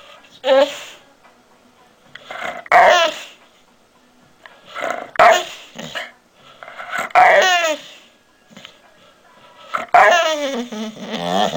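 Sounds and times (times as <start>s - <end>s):
Labrador Retriever barking: 2.5s - 3.3s, 4.8s - 6.2s, 6.9s - 7.8s, 9.8s - 11.5s.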